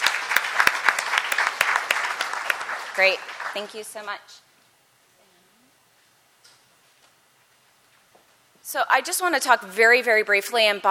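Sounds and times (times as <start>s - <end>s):
audience applause: 0.0s - 4.0s
speech: 3.0s - 4.5s, 8.7s - 10.8s.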